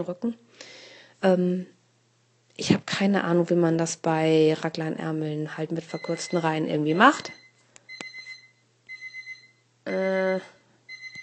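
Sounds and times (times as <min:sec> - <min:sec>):
speech: 0:00.0 - 0:01.8, 0:02.6 - 0:07.4
alarm clock ringing with an electronic melody: 0:05.9 - 0:11.2.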